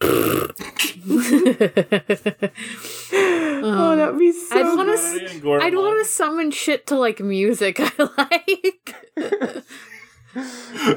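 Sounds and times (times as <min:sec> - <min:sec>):
wet sputtering raspberry blown with the mouth imitating a fart: 0:00.0 - 0:01.0
laughter: 0:00.8 - 0:05.6, 0:07.6 - 0:10.9
speech: 0:01.1 - 0:02.2, 0:06.4 - 0:10.9.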